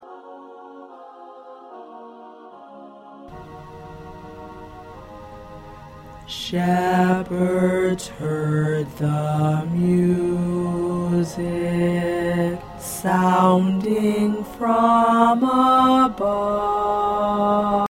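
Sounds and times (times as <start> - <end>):
tenor choir part singing a Christmas song: 6.3 - 17.8.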